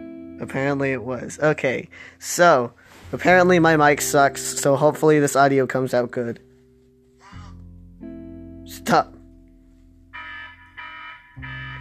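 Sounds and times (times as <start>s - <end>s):
speech: 0.4s - 6.5s, 8.8s - 9.2s
electronic alarm clock ringing: 10.1s - 11.7s.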